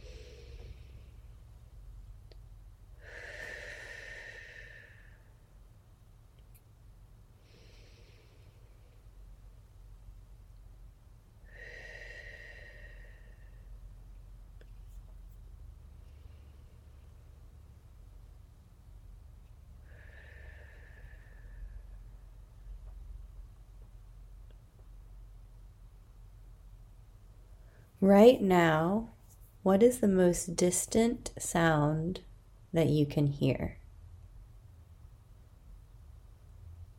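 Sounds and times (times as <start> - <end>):
guided breathing in through nose and out through mouth: 0.0 - 1.7, 2.9 - 5.6, 7.3 - 9.4, 11.4 - 14.0, 15.9 - 17.5, 19.5 - 22.9, 27.5 - 28.0
low steady hum: 0.0 - 36.9
speech: 28.0 - 33.8.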